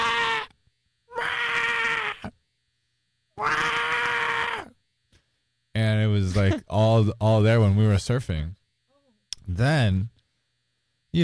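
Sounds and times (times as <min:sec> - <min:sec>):
voice imitating a baby otter screeching for its mother: 0:00.0 - 0:00.5, 0:01.1 - 0:02.4, 0:03.4 - 0:04.8
speech: 0:06.4 - 0:08.6, 0:09.6 - 0:10.2.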